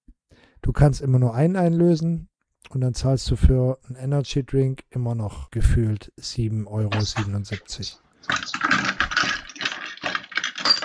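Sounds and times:
speech: 0.6s - 8.5s
rustling and clattering as things are shuffled inside a box: 6.9s - 10.8s.

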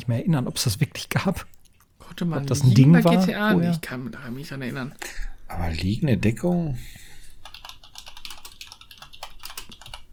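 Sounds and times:
speech: 0.0s - 7.1s
computer keyboard typing: 7.4s - 10.1s.

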